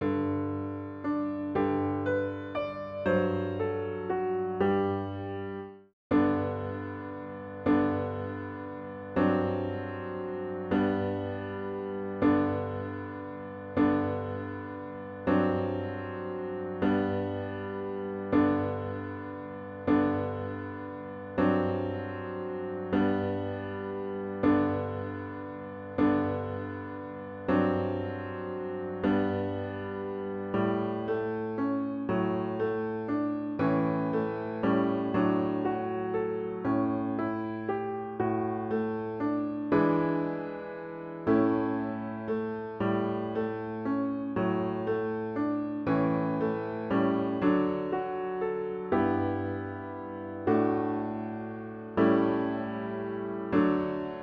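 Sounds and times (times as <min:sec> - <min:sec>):
piano playing children's song: 0:00.0 - 0:54.2.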